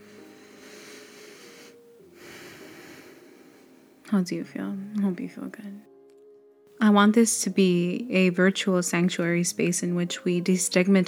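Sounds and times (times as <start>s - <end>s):
slow meditative breath in and out: 0.0s - 4.1s
speech: 4.1s - 5.9s, 6.8s - 11.0s.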